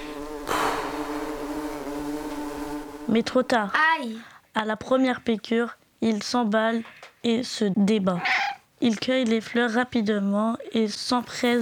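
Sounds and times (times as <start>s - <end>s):
bee buzzing near the ear: 0.0s - 3.8s
speech: 3.1s - 11.6s.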